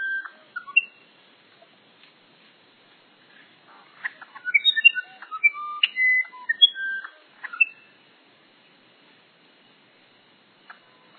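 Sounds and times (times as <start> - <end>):
musician wren song: 0.0 - 1.1, 4.0 - 8.0.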